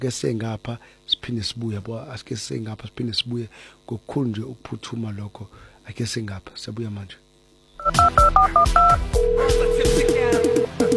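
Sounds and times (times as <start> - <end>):
speech: 0.0 - 7.2, 7.9 - 10.7
low rhythmic backing pulse: 7.8 - 10.9
telephone keypad dual-tone dialing beeps: 7.8 - 10.9.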